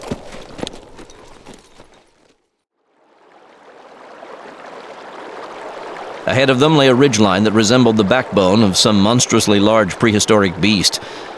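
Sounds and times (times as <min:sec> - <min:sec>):
hoofbeats of ridden Mongol horses: 0:00.0 - 0:02.4
speech: 0:06.3 - 0:11.3.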